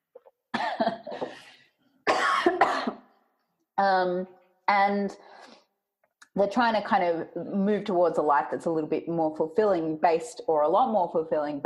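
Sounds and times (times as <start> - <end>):
harsh coughing: 0.5 - 1.5, 2.1 - 3.1
speech: 3.8 - 5.3, 6.4 - 11.6.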